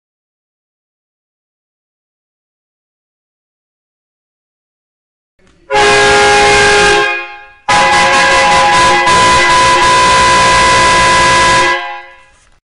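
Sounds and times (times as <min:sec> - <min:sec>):
chrome four-trumpet 12V truck air horn: 0:05.7 - 0:12.5.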